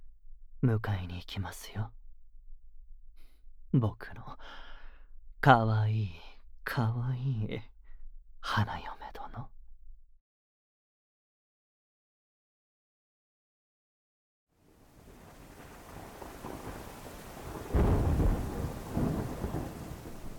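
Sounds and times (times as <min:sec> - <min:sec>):
speech: 0:00.6 - 0:02.0, 0:03.7 - 0:04.6, 0:05.4 - 0:07.7, 0:08.4 - 0:09.6
heavy rain: 0:14.7 - 0:20.3
deep rumble of thunder: 0:15.0 - 0:20.3.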